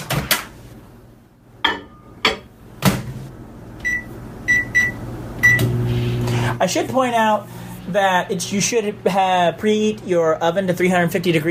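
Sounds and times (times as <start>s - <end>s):
microwave oven humming: 0.0s - 11.4s
dishes clattering: 1.6s - 2.5s
microwave keypad beeps: 3.8s - 5.6s
speech: 6.6s - 11.4s.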